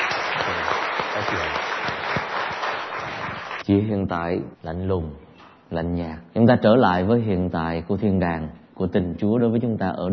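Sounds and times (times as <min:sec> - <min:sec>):
large audience applause: 0:00.0 - 0:03.6
speech: 0:03.7 - 0:10.1.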